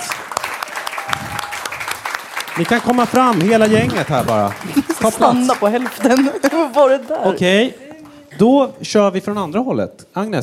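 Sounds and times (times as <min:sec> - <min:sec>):
live audience applauding: 0:00.0 - 0:08.3
speech: 0:02.6 - 0:07.8, 0:08.4 - 0:10.4
laughter: 0:03.3 - 0:07.2.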